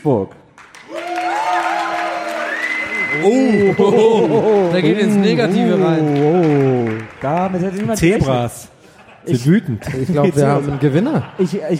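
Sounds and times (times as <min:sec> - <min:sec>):
speech: 0:00.0 - 0:00.4, 0:03.2 - 0:11.7
live audience applause: 0:00.6 - 0:08.5
laughter: 0:03.2 - 0:06.9, 0:07.7 - 0:11.7.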